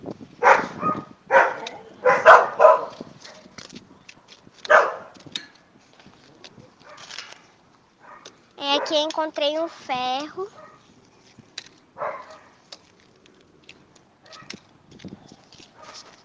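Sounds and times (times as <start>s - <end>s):
dogs barking at houses: 0.4s - 3.5s, 4.7s - 5.1s, 8.0s - 9.0s, 10.5s - 10.8s, 12.0s - 12.6s, 14.2s - 14.6s, 15.8s - 16.1s
speech: 9.0s - 10.6s.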